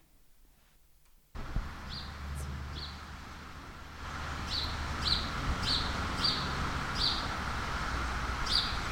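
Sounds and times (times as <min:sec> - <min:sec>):
steady outdoor hiss: 0:00.0 - 0:08.9
birds chirping at sunset: 0:01.8 - 0:03.1, 0:04.4 - 0:07.4, 0:08.0 - 0:08.9.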